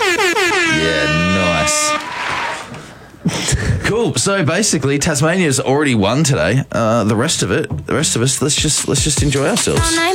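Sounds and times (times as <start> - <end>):
air horn sound effect blaring: 0.0 - 2.7
speech: 4.0 - 10.1.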